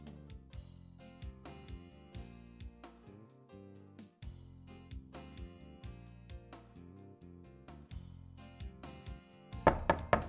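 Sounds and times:
steady rhythmic music: 0.0s - 10.2s
loud sharp knocks: 9.7s - 10.2s.

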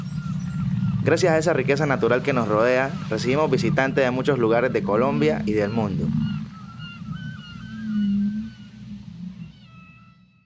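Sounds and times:
constant deep rumble of water: 0.0s - 10.4s
drawn-out wavering whale calls: 0.0s - 10.4s
speech: 1.0s - 6.3s.

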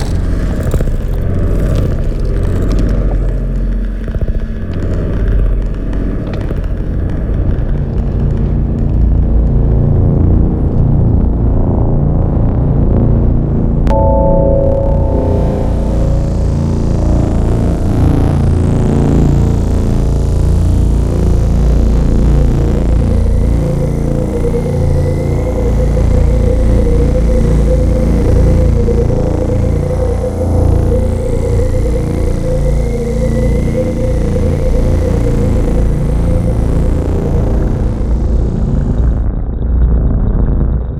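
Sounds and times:
dark dense low drone with shifting mid tones: 0.0s - 40.9s
sharp impact: 13.9s - 18.0s.

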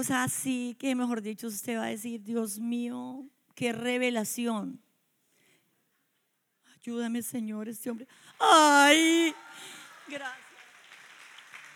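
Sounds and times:
speech: 0.0s - 4.8s, 6.8s - 10.4s
church audience applause: 9.4s - 11.7s.

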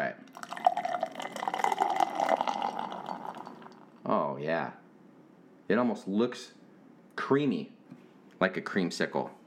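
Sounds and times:
IPA beer pouring into a cup: 0.3s - 4.0s
speech: 4.1s - 4.8s, 5.7s - 6.6s, 7.2s - 7.8s, 8.4s - 9.4s.

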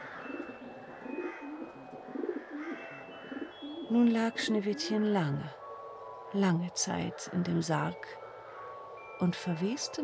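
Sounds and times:
dove cooing: 0.0s - 5.2s
speech: 3.9s - 5.6s, 6.3s - 8.2s, 9.2s - 10.0s.

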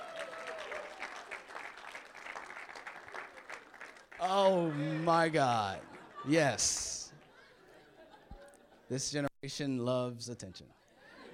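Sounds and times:
audience applauding: 0.0s - 7.3s
speech: 4.2s - 7.0s, 8.9s - 10.8s
laughter: 4.2s - 9.0s, 10.7s - 11.3s.

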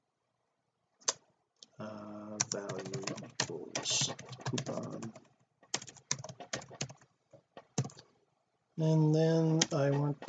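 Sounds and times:
typing on a computer keyboard while writing code: 2.4s - 8.1s, 9.6s - 10.2s
speech: 3.8s - 5.3s, 8.8s - 10.2s.

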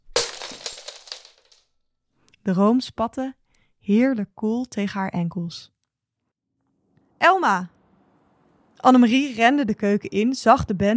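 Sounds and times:
glass bowl smashing: 0.0s - 1.6s
speech: 2.4s - 5.8s, 7.2s - 7.8s, 8.8s - 10.9s.

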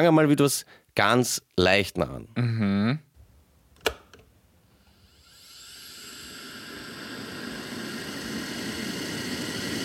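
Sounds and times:
speech: 0.0s - 3.1s
electric kettle boiling: 5.0s - 9.8s.

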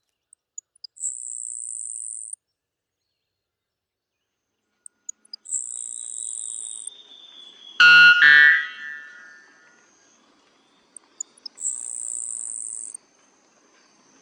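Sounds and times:
grasshopper sparrow singing insect-like song: 0.0s - 3.4s, 4.2s - 8.2s, 9.1s - 13.0s.

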